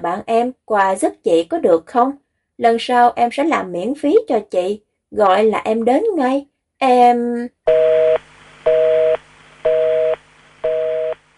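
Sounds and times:
speech: 0.0s - 8.0s
telephone busy tone after the other end hangs up: 7.7s - 11.3s.

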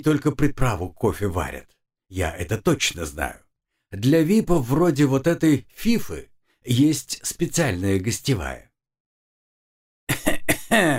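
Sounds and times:
speech: 0.0s - 8.7s, 10.7s - 10.9s
man coughing: 10.1s - 10.9s.

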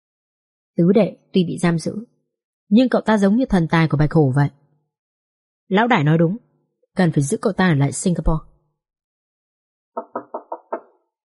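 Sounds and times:
speech: 0.8s - 2.1s, 2.7s - 4.6s, 5.7s - 6.4s, 7.0s - 8.5s
knocking on a room door: 10.0s - 11.0s.

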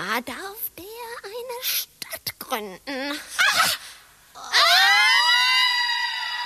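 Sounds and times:
speech: 0.2s - 0.6s, 2.5s - 3.8s
women astrologers shrieking and screaming: 4.4s - 6.4s.

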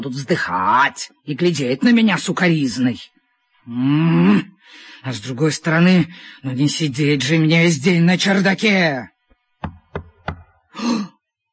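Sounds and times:
speech: 0.0s - 9.8s, 10.8s - 11.1s
firm knocking on a door: 9.6s - 10.6s.

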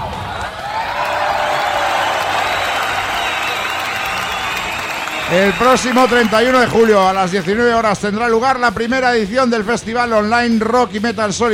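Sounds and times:
canned applause sound effect: 0.0s - 8.0s
speech: 5.3s - 11.5s.

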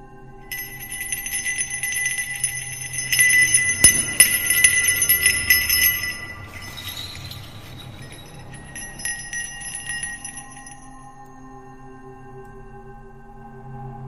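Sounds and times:
bell ringing: 0.5s - 11.1s.

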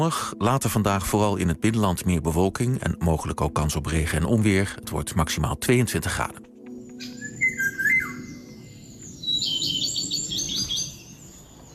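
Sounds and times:
speech: 0.0s - 7.1s
Eurasian golden oriole singing in Lauwersmeer National Park in the Netherlands: 6.4s - 11.7s
small birds chirping: 6.7s - 11.7s.

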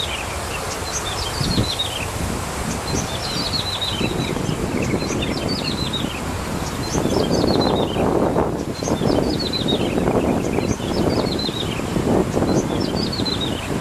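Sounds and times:
bar-winged prinia singing chirpy descending phrases: 0.0s - 13.8s.

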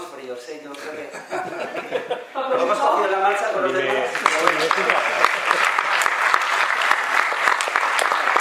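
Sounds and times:
speech: 0.2s - 5.8s
laughter: 0.8s - 3.2s
audience applause at a panel discussion on transgenic crops: 3.6s - 8.3s.

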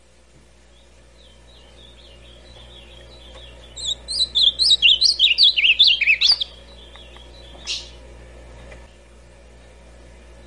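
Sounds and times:
steady hum: 0.0s - 10.4s
ultramarine grosbeak warbling whistled song in classic style: 0.7s - 8.0s.

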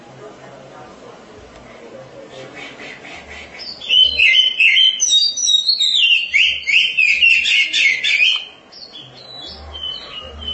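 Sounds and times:
Oriental magpie-robin singing a rich warble: 2.4s - 10.5s.

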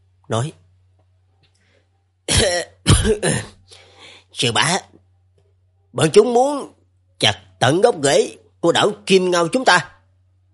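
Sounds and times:
speech: 0.3s - 0.6s, 2.4s - 3.8s, 4.4s - 5.0s, 6.0s - 9.9s
person coughing while walking in: 2.3s - 3.7s
throat clearing: 2.3s - 3.7s.

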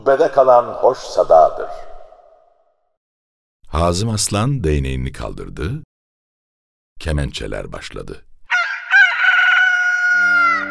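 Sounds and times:
speech: 0.0s - 1.9s, 3.7s - 5.9s, 7.0s - 8.3s
rooster crowing in Istanbul: 8.5s - 10.7s.

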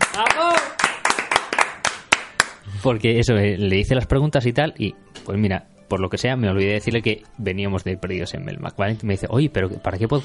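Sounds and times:
applause hand clapping: 0.0s - 2.6s
speech: 0.2s - 0.5s, 2.8s - 10.2s.

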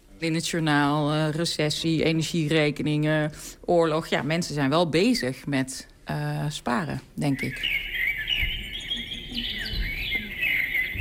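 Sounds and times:
speech: 0.2s - 7.9s
recorded birdsong whistling from a sensor-triggered birdhouse: 7.2s - 10.9s.

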